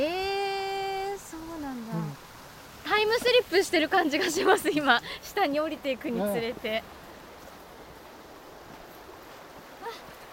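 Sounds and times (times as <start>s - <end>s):
river water flowing: 0.0s - 10.3s
speech: 3.1s - 7.0s.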